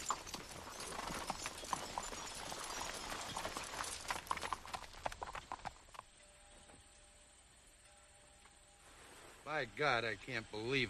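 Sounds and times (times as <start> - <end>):
pony hooves clip-clopping on a road: 0.0 - 6.2
speech: 9.5 - 10.8.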